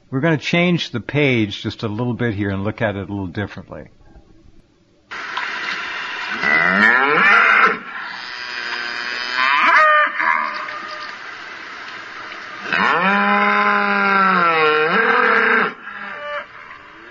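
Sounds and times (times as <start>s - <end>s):
speech: 0.1s - 4.0s
cow mooing: 6.4s - 10.7s, 12.7s - 17.0s.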